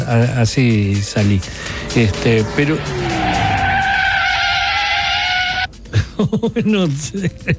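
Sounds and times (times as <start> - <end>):
speech: 0.1 - 3.2, 6.2 - 7.5
voice imitating a car sliding in zigzag on muddy streets: 0.8 - 5.7.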